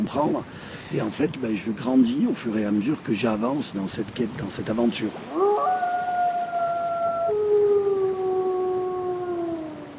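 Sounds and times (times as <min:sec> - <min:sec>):
speech: 0:00.1 - 0:05.5
wolf pack howling: 0:05.3 - 0:09.9.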